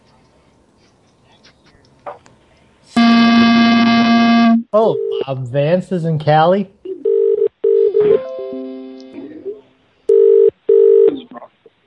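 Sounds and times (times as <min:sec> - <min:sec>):
sliding electronic tones: 0:03.0 - 0:05.2
telephone line ringback tone: 0:03.0 - 0:05.2, 0:07.1 - 0:08.2, 0:10.1 - 0:11.1
speech: 0:04.7 - 0:06.8.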